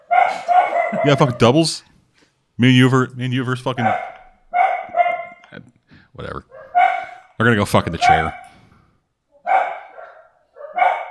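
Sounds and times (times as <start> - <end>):
dogs barking: 0.0 - 1.6, 3.8 - 5.6, 6.4 - 8.6, 9.4 - 11.0
speech: 0.9 - 1.9, 2.6 - 4.1, 6.2 - 6.5, 7.4 - 8.4.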